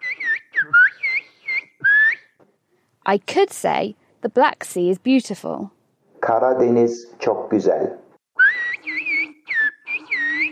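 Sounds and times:
whistled Turkish phrase in high sliding whistle bursts: 0.0 - 2.3, 8.4 - 10.5
speech: 3.1 - 8.0.

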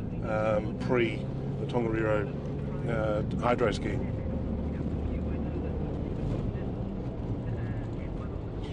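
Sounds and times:
car engine and tire noise driving along a road: 0.0 - 8.7
speech: 0.3 - 4.2.

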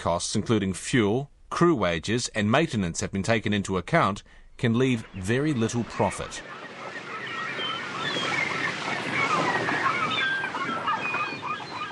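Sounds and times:
speech: 0.0 - 6.6
wind at a marina: 0.0 - 11.8
scattered bird calls and faint squawks: 4.7 - 11.8
constant wash of water at a marina: 5.2 - 11.8.

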